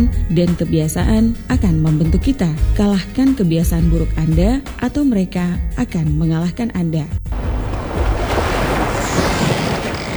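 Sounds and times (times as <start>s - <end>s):
speech: 0.0s - 7.2s
wind buffeting the microphone: 7.3s - 10.1s
ocean surf washing onto a beach: 7.4s - 10.1s.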